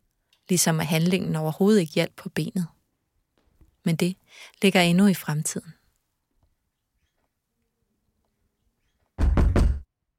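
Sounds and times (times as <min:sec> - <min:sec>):
speech: 0:00.5 - 0:02.8, 0:03.8 - 0:05.8
firm knocking on a wooden door: 0:09.2 - 0:09.9.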